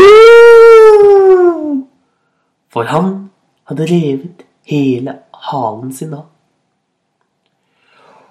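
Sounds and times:
person's voice imitating a bear crying out in pain: 0:00.0 - 0:01.9
speech: 0:02.8 - 0:06.3.

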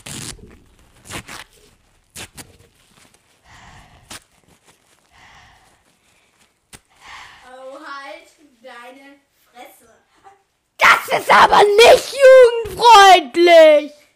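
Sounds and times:
crisp paper rustling and crinkling: 0:00.0 - 0:06.9
speech: 0:11.1 - 0:14.0.

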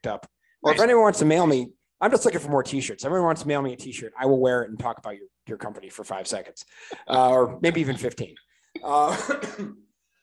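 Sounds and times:
speech: 0:00.0 - 0:09.8
raspy cough from a lingering cold: 0:09.1 - 0:09.8.

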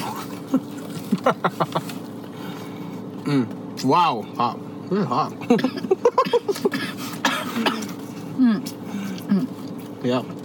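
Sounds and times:
speech: 0:00.5 - 0:02.0, 0:03.3 - 0:10.4
person coughing harshly: 0:05.5 - 0:08.0.

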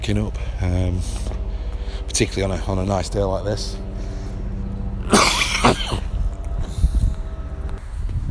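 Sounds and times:
faint movement sounds: 0:00.0 - 0:08.2
low rumbling noise: 0:00.0 - 0:08.2
speech: 0:00.1 - 0:01.4, 0:02.0 - 0:03.9
person with a terrible cough coughing harshly while walking past people: 0:05.0 - 0:06.2.

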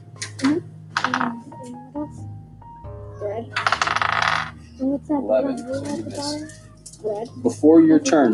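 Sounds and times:
dice rattling and tumbling across a hard tabletop: 0:03.6 - 0:04.5
faint voices murmuring: 0:04.8 - 0:08.3
speech: 0:05.0 - 0:08.3.

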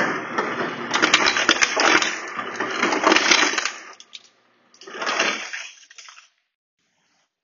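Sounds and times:
ice cubes clattering into a glass: 0:01.0 - 0:06.3.

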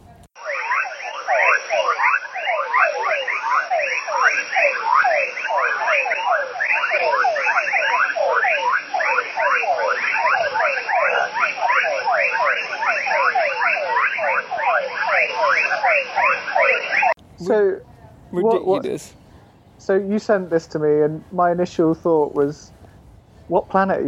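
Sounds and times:
dense chorus of frogs calling at night: 0:00.4 - 0:17.1
speech: 0:17.4 - 0:19.2, 0:19.8 - 0:22.8, 0:23.5 - 0:24.0.

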